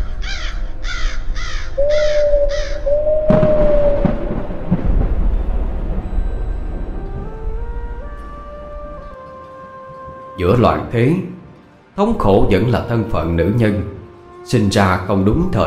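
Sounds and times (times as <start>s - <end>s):
crows cawing over dry fields: 0.0s - 4.3s
low rumbling roar: 2.2s - 9.2s
speech: 10.4s - 11.4s, 12.0s - 15.6s.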